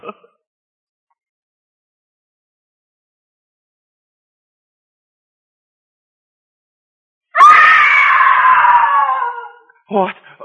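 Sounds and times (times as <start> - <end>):
woman screaming loudly at high pitch: 7.4 - 9.7
speech: 9.9 - 10.3.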